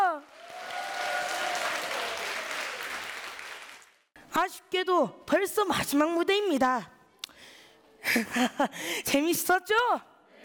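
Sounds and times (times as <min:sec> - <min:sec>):
crowd applauding: 0:00.2 - 0:04.1
speech: 0:04.5 - 0:07.0, 0:08.1 - 0:10.1.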